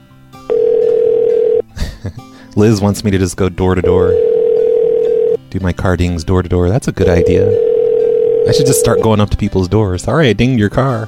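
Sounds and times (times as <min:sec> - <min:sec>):
steady telephone dialing tone: 0:00.5 - 0:01.6, 0:03.8 - 0:05.4, 0:07.0 - 0:09.2
speech: 0:02.0 - 0:04.3, 0:05.5 - 0:07.6, 0:08.4 - 0:11.0.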